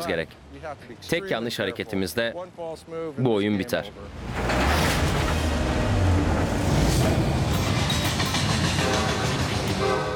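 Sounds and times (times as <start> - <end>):
speech: 0.0 - 4.7
train rumbling along railway tracks: 4.2 - 10.1
brief horn-like tone: 8.7 - 10.1.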